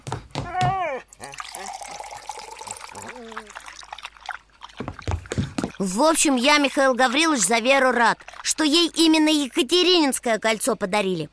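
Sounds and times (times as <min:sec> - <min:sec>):
water pouring into a bowl: 0:01.2 - 0:09.6
speech: 0:03.2 - 0:03.6, 0:05.8 - 0:11.3.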